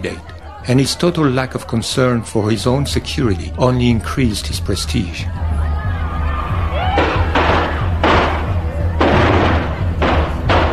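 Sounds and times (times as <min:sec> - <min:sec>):
speech: 0:00.0 - 0:05.5
low rumble of crowd noise at a presidential campaign appearance: 0:00.0 - 0:10.7
Chinese firecrackers popping at a presidential campaign appearance: 0:07.0 - 0:10.7.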